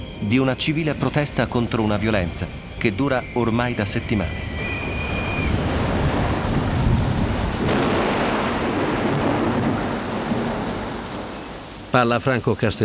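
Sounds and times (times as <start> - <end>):
faint whistle-like tone: 0.0 - 5.6
speech: 0.2 - 4.6, 11.9 - 12.8
heavy rain falling on open umbrellas: 4.8 - 12.1.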